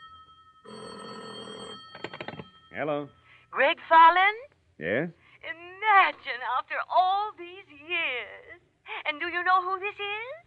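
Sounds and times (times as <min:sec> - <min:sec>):
telephone bell ringing with a sustained metallic trill: 0:00.0 - 0:03.3
speech: 0:02.8 - 0:08.4, 0:09.1 - 0:10.4.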